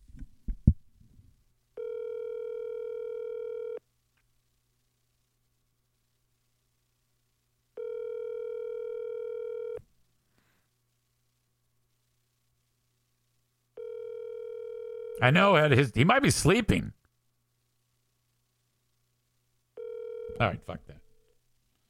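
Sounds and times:
faint hum: 0.0s - 21.8s
outgoing phone call ringback tones: 1.8s - 3.8s, 7.8s - 9.8s, 13.8s - 15.2s, 19.8s - 20.5s
speech: 15.2s - 17.0s, 20.4s - 21.0s.

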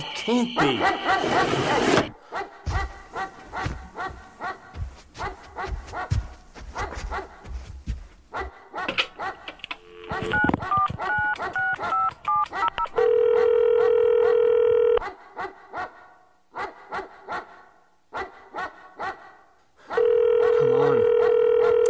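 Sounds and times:
speech: 0.0s - 2.5s
dog barking: 0.7s - 7.7s, 8.3s - 9.6s, 11.0s - 20.2s, 21.1s - 21.8s
telephone ringing: 9.8s - 12.4s, 13.1s - 15.0s, 20.0s - 21.8s
touch-tone telephone dialing beeps: 9.9s - 12.4s.

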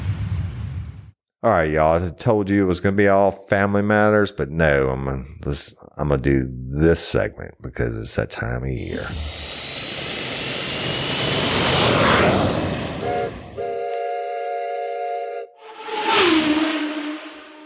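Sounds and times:
speech: 1.4s - 9.5s
rushing whoosh: 8.8s - 13.6s, 15.6s - 17.6s
airplane engine roaring with a high whine: 8.8s - 14.2s, 15.6s - 17.6s
steady horn-like blast: 11.5s - 17.6s.

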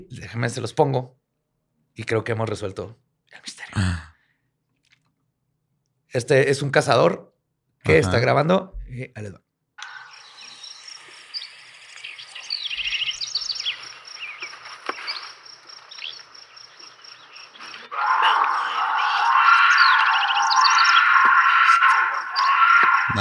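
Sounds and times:
speech: 0.0s - 1.2s, 2.0s - 4.1s, 6.1s - 9.4s
birds chirping outdoors: 9.8s - 23.2s
steady insect hum: 9.8s - 23.2s
bobcat screaming: 17.7s - 23.2s.

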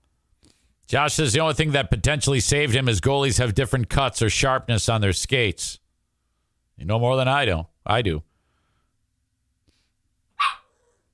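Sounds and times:
speech: 0.9s - 5.8s, 6.8s - 8.3s
small dog barking: 10.4s - 11.0s.

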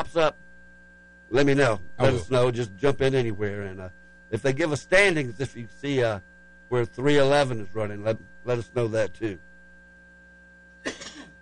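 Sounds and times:
speech: 0.1s - 0.5s, 1.3s - 9.5s
raspy throat-clearing rumble: 10.8s - 11.3s
single sharp cough: 10.8s - 11.3s.

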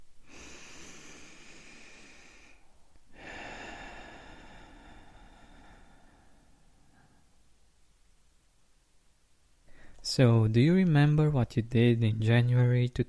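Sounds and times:
deep breath in: 0.2s - 7.5s, 9.6s - 10.0s
speech: 10.1s - 13.0s.

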